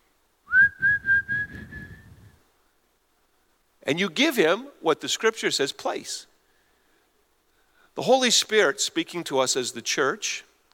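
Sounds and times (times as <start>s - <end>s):
person whistling one long steady note: 0.5s - 2.4s
speech: 3.9s - 6.3s, 8.0s - 10.5s.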